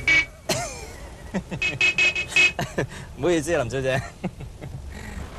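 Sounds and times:
car horns honking from behind a stopped car: 0.0 - 0.6, 1.5 - 2.7
speech: 1.3 - 4.4.

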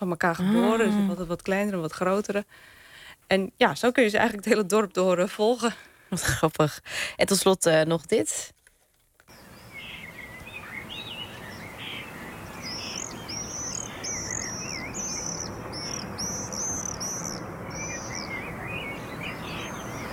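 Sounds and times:
speech: 0.0 - 8.6
Common swifts giving high thin screaming calls: 9.3 - 20.1.

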